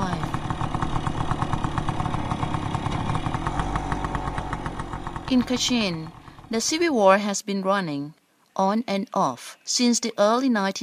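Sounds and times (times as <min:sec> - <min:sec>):
motorbike engine running: 0:00.0 - 0:07.0
speech: 0:05.3 - 0:10.8.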